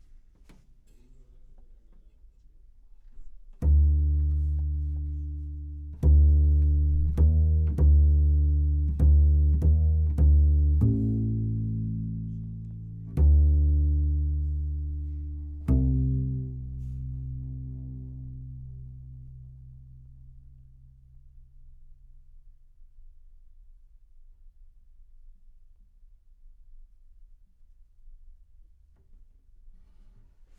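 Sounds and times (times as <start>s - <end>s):
bass C note: 3.6s - 20.1s.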